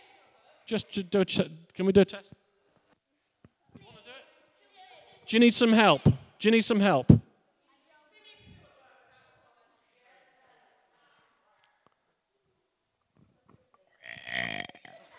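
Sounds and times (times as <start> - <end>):
speech: 0.7 - 2.4, 5.3 - 7.2
person belching deliberately after swallowing air: 14.0 - 15.0.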